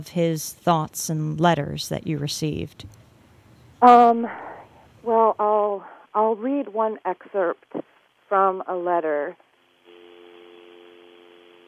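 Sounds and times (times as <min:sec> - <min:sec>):
speech: 0:00.0 - 0:03.0, 0:03.8 - 0:09.4
telephone dial tone over a hissy phone line: 0:09.9 - 0:11.6.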